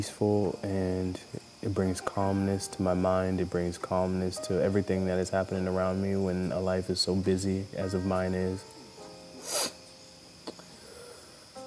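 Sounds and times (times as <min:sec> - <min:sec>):
speech: 0:00.0 - 0:08.7
sharp airy nasal sniff from allergy sniffle: 0:09.4 - 0:09.9.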